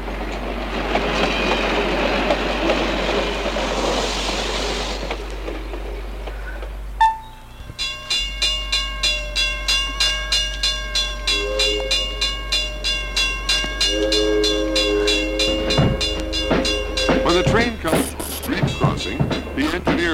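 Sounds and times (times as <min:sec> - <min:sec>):
freight train rumbling on rails: 0:00.0 - 0:20.1
regular ringing pulses: 0:07.0 - 0:19.6
brief whistle-like tone: 0:11.2 - 0:12.9, 0:13.5 - 0:18.6.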